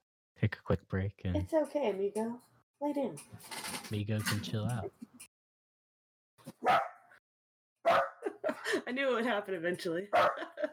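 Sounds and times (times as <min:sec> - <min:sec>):
speech: 0:00.4 - 0:05.3, 0:08.9 - 0:10.7
dog barking: 0:06.6 - 0:07.2, 0:07.8 - 0:08.3, 0:10.1 - 0:10.6
laughter: 0:08.2 - 0:08.9, 0:10.2 - 0:10.7.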